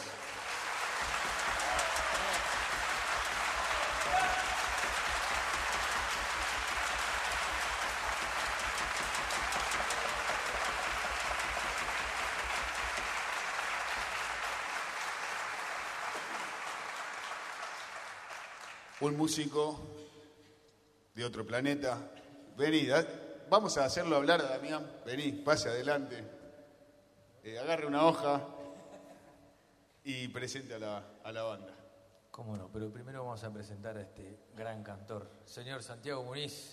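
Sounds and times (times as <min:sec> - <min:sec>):
sizable audience applauding: 0:00.0 - 0:19.4
speech: 0:19.0 - 0:20.0, 0:21.2 - 0:26.4, 0:27.4 - 0:28.6, 0:30.0 - 0:31.8, 0:32.4 - 0:36.7.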